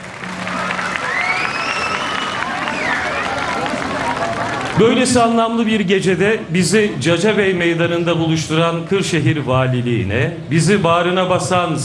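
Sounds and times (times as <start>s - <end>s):
festival audience applauding and cheering in a town square: 0.0s - 5.3s
high curling whistles from a festival audience: 0.8s - 3.1s
speech: 4.8s - 11.8s.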